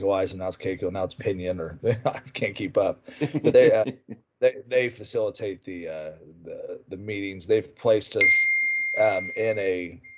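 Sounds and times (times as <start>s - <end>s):
speech: 0.0s - 10.1s
laughter: 1.8s - 4.9s
phone alert high electronic tone: 8.2s - 10.1s.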